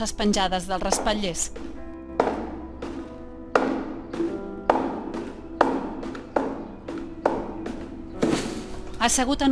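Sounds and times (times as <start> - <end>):
speech: 0.0 - 1.7, 9.0 - 9.5
feet kicking a metal wastebasket in a classroom: 1.6 - 9.0
metal wastebasket tipping over: 8.2 - 9.0.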